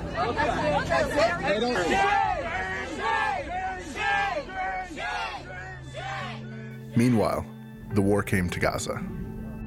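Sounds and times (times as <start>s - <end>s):
crowd of protesters shouting and yelling: 0.0s - 6.8s
speech: 0.2s - 2.3s, 7.0s - 9.2s.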